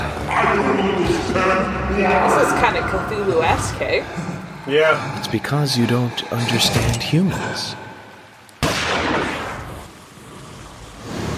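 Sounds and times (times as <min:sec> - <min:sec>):
speech: 0:00.8 - 0:07.9
pistol shot fired at a monster's eyeball: 0:08.6 - 0:09.8.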